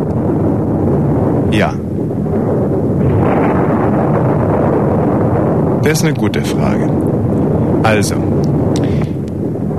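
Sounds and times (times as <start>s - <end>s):
long rolling thunder: 0.0s - 9.7s
speech: 1.5s - 1.8s, 5.8s - 7.2s, 7.8s - 9.0s.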